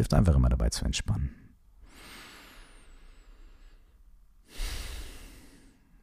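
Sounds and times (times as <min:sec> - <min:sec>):
speech: 0:00.0 - 0:01.4
deep breaths during a guided relaxation exercise: 0:01.8 - 0:06.0.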